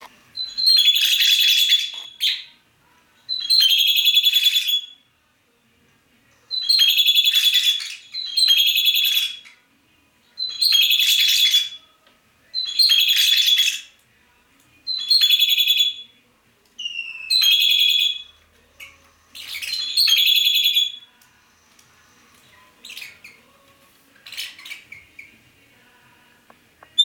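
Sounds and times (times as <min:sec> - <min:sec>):
Psephotus haematonotus parrots chirping: 0:00.4 - 0:02.5, 0:03.3 - 0:05.0, 0:06.5 - 0:09.6, 0:10.4 - 0:11.8, 0:12.6 - 0:13.9, 0:14.9 - 0:16.0, 0:16.8 - 0:21.1, 0:22.4 - 0:23.6, 0:24.2 - 0:25.4.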